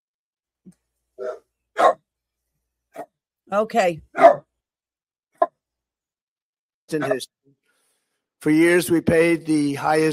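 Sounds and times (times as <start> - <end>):
speech: 0.6 - 2.0, 3.5 - 4.3, 6.9 - 7.4, 8.4 - 10.1
dogs barking in sharp bursts: 1.2 - 2.0, 2.9 - 3.1, 4.1 - 4.5, 6.9 - 7.2.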